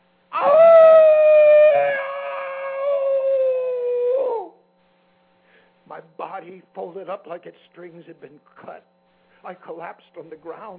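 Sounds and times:
person imitating an animal howl: 0:00.3 - 0:04.6
speech: 0:06.4 - 0:10.7.

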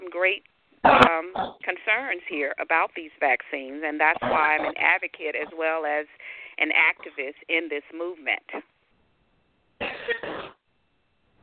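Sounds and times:
speech: 0:00.2 - 0:08.7
person coughing harshly: 0:09.8 - 0:10.6.

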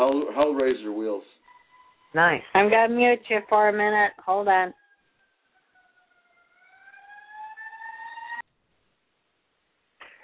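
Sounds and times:
speech: 0:00.2 - 0:01.4, 0:02.1 - 0:04.8
wailing siren of a passing emergency vehicle: 0:01.4 - 0:08.4.

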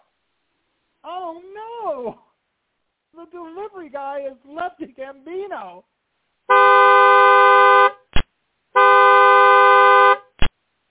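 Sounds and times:
speech: 0:01.0 - 0:02.2, 0:03.2 - 0:06.0
delivery truck horn blaring outside a hotel loading dock: 0:06.5 - 0:08.0, 0:08.8 - 0:10.3.

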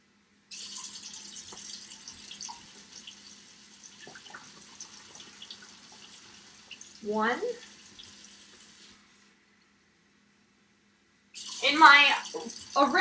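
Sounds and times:
water pouring into a container: 0:00.5 - 0:09.0, 0:11.4 - 0:12.9
speech: 0:07.0 - 0:07.7, 0:12.8 - 0:12.9.

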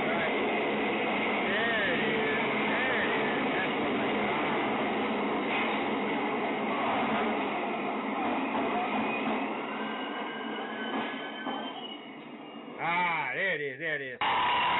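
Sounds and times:
subway train roaring: 0:00.0 - 0:13.4, 0:14.2 - 0:14.7
subway train metallic wheel squeals: 0:09.0 - 0:12.8.

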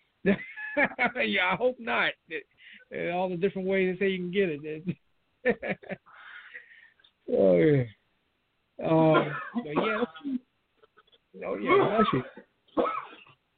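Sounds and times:
speech: 0:00.2 - 0:06.1, 0:07.3 - 0:08.0, 0:08.8 - 0:10.4, 0:11.4 - 0:13.1
harsh raspy phlegmy coughs: 0:09.0 - 0:10.4, 0:11.6 - 0:13.4.

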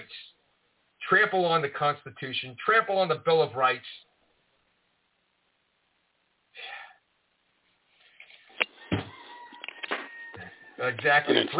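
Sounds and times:
speech: 0:01.1 - 0:04.0, 0:10.8 - 0:11.5
rooster crowing: 0:08.7 - 0:11.0.

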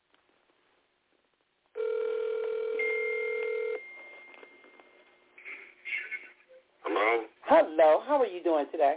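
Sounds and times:
outgoing phone call ringback tone: 0:01.8 - 0:05.0
faint phone line noise: 0:01.8 - 0:05.4
speech: 0:07.0 - 0:08.9.

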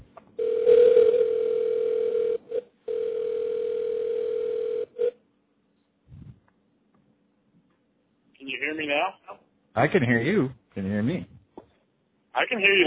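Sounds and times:
telephone dial tone during an attempt to reconnect a call: 0:00.4 - 0:05.1
faint low sound: 0:06.1 - 0:06.5
speech: 0:09.8 - 0:11.3, 0:12.4 - 0:12.8.

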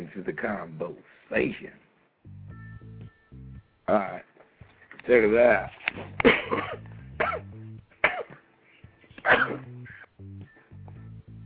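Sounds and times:
speech: 0:00.1 - 0:02.4, 0:03.9 - 0:04.3, 0:05.0 - 0:06.8
music: 0:02.2 - 0:11.4
person hacking with harsh throaty coughs: 0:06.2 - 0:08.4, 0:09.2 - 0:09.8.

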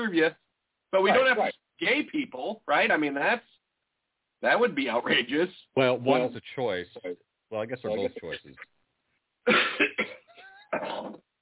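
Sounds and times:
speech: 0:00.0 - 0:03.5, 0:04.4 - 0:08.8, 0:09.4 - 0:11.2
harsh raspy coughing fit: 0:09.5 - 0:11.2.

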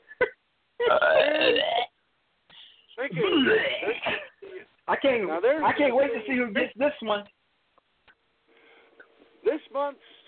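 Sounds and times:
loud burp: 0:00.8 - 0:02.0
speech: 0:01.3 - 0:01.8, 0:03.0 - 0:04.2, 0:04.9 - 0:07.4, 0:09.7 - 0:10.1.

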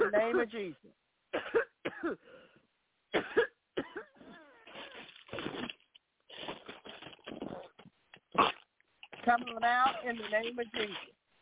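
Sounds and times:
speech: 0:00.1 - 0:00.9, 0:09.3 - 0:11.1
several people coughing: 0:01.3 - 0:02.2, 0:03.1 - 0:04.6.

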